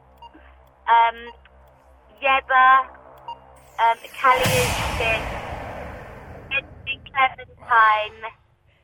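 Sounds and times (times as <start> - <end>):
quiz electronic timer beep: 0.0 - 2.4, 3.1 - 4.6
speech: 1.0 - 1.5, 2.2 - 3.0, 3.8 - 5.4, 7.2 - 8.4.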